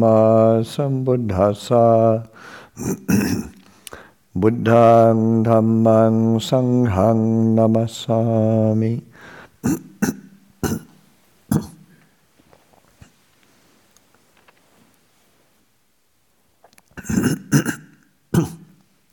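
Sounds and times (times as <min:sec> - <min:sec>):
speech: 0:00.0 - 0:03.6, 0:04.4 - 0:10.8
person clearing throat: 0:02.8 - 0:03.6, 0:09.6 - 0:12.0, 0:17.0 - 0:18.8
person coughing: 0:02.8 - 0:03.6, 0:09.6 - 0:11.9, 0:17.0 - 0:18.8.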